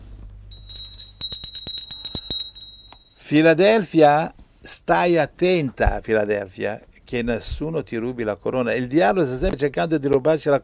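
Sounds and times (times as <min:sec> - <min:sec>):
low hum: 0:00.0 - 0:10.6
small bright bell dinging rapidly: 0:00.5 - 0:03.2
speech: 0:03.3 - 0:10.6.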